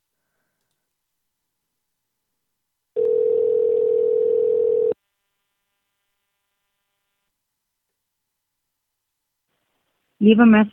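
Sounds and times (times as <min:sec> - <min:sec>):
telephone dialing tone: 0:03.0 - 0:05.0
speech: 0:10.2 - 0:10.7.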